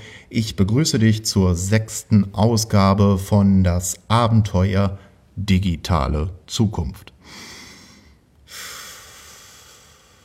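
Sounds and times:
speech: 0.3s - 7.5s
loud breathy exhale through the nose: 7.3s - 10.2s.

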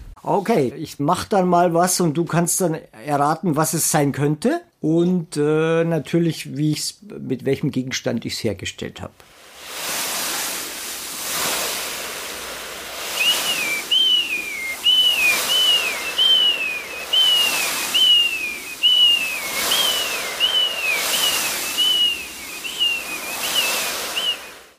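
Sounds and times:
speech: 0.2s - 9.4s
foley imitation of breaking sea waves: 9.4s - 24.7s
high falling whistled cries mimicking seagulls: 13.1s - 24.7s.

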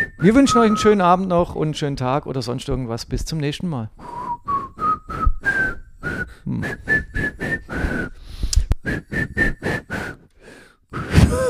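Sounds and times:
person whistling a short melody: 0.0s - 1.2s, 4.0s - 10.2s
speech: 0.2s - 4.2s, 6.5s - 7.1s.

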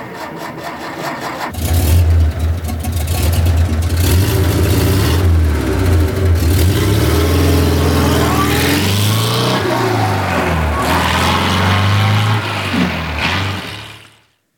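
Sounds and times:
Porsche 356 sports car engine cranking, idling and revving: 1.5s - 13.8s.

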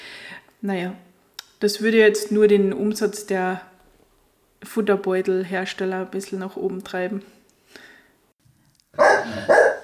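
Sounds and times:
speech: 0.6s - 3.7s, 4.6s - 7.8s
dog barking: 9.0s - 9.8s.

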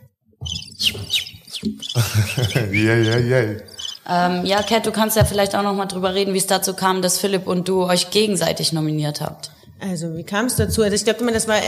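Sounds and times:
bird chirping and tweeting: 0.4s - 5.4s
speech: 1.6s - 11.6s
laughter: 1.7s - 3.8s.

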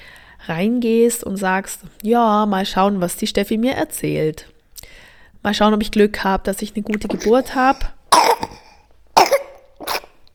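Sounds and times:
speech: 0.5s - 4.5s, 5.4s - 8.5s
baby coughing: 7.0s - 10.2s.

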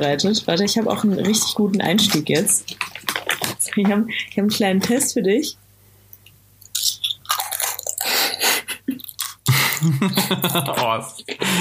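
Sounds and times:
speech: 0.0s - 5.6s, 9.8s - 11.5s
person chewing a mouthful of food: 1.4s - 3.8s, 6.2s - 10.7s
squishy mouth sounds: 2.1s - 3.8s, 6.6s - 9.9s
laughter: 8.4s - 11.5s.

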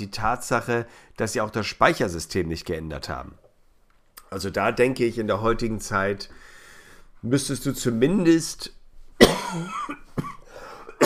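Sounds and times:
speech: 0.0s - 3.4s, 4.3s - 6.5s, 7.2s - 10.3s
person coughing into a microphone: 9.2s - 11.0s.

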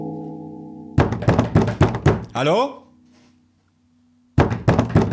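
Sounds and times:
police detective knocking firmly on a door: 1.0s - 2.3s, 4.4s - 5.1s
speech: 2.4s - 2.8s.

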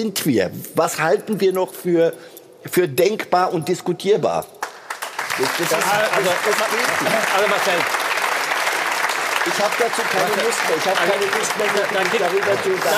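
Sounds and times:
speech: 0.0s - 4.6s, 5.4s - 8.0s, 9.5s - 12.9s
large crowd audience applause: 4.9s - 12.9s.

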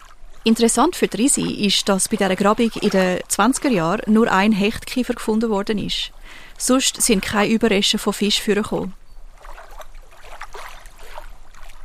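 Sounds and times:
continuous wash of moving lake water: 0.0s - 11.8s
oar splashes of a small fishing boat rowed on a lake: 0.0s - 11.8s
speech: 0.4s - 9.0s.

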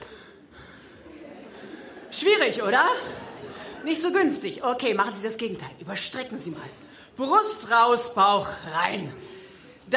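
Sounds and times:
crowd breathing deeply in and out together: 0.0s - 2.1s, 3.0s - 3.9s, 9.2s - 9.9s
laughter: 0.0s - 4.6s
speech: 2.2s - 9.3s.

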